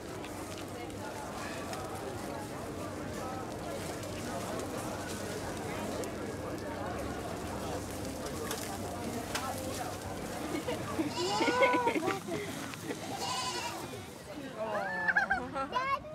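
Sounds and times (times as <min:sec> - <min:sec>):
crowd chatter at an outdoor gathering: 0:00.0 - 0:16.1
laughter: 0:10.3 - 0:13.5, 0:14.4 - 0:15.8
goats bleating: 0:11.0 - 0:12.0, 0:13.0 - 0:13.9.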